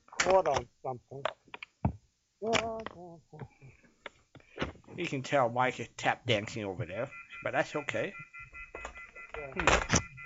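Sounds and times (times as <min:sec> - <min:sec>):
speech: 0:00.2 - 0:01.4, 0:02.4 - 0:03.8, 0:05.0 - 0:08.3, 0:09.4 - 0:10.0
telephone handset clunking and rattling as it is hung up: 0:08.6 - 0:10.2.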